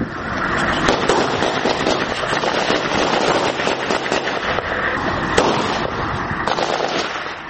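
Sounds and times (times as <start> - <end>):
sharp loud gunshots: 0.9 - 4.6, 5.3 - 7.4
gunfire from militants shooting at an Afghan forces post: 0.9 - 4.7, 5.3 - 7.4.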